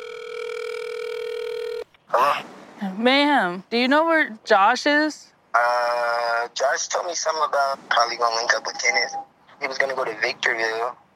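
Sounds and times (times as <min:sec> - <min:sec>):
mobile phone telephone tone after a number is dialed: 0:00.0 - 0:01.9
speech: 0:02.1 - 0:11.0.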